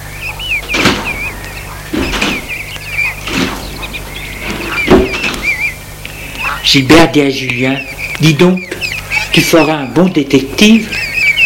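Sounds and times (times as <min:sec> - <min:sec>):
birds chirping: 0:00.0 - 0:11.4
thuds and clunks of someone getting into a car: 0:00.6 - 0:01.3, 0:01.9 - 0:02.5, 0:04.5 - 0:05.4
speech: 0:06.7 - 0:11.0.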